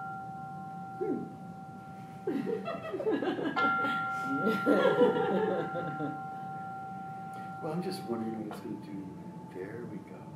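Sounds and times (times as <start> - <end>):
meditation gong ringing: 0.0 - 10.3
people chuckling and murmuring quietly: 2.2 - 6.3
speech: 2.3 - 6.3, 7.6 - 10.2.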